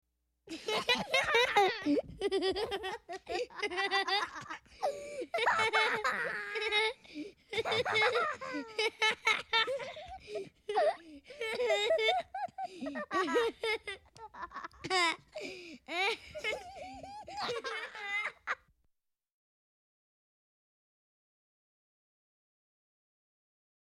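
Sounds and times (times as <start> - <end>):
boy and girl laughing: 0.5 - 18.6.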